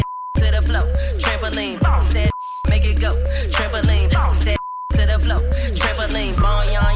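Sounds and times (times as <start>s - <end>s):
high censor beep over a swear word: 0.0s - 0.8s, 2.2s - 2.9s
loud bass-heavy dance track: 0.0s - 6.9s.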